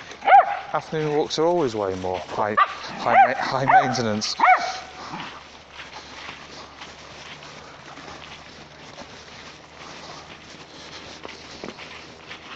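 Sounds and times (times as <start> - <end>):
dogs barking and whimpering outdoors during a dog walk: 0.0 - 0.8, 2.5 - 5.6
ambient noise: 0.0 - 12.5
footsteps shuffling: 0.0 - 12.5
speech: 0.7 - 5.4.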